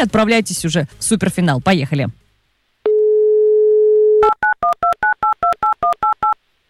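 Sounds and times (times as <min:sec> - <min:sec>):
speech: 0:00.0 - 0:02.2
telephone dial tone: 0:02.9 - 0:06.4
two-pitched telephone keypad beeps as a number is dialed: 0:04.2 - 0:06.4.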